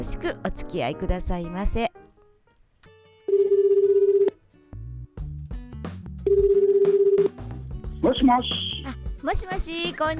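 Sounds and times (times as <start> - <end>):
speech: 0.0 - 2.0, 8.0 - 10.1
telephone ringing for an incoming call: 3.3 - 4.4, 6.3 - 7.3.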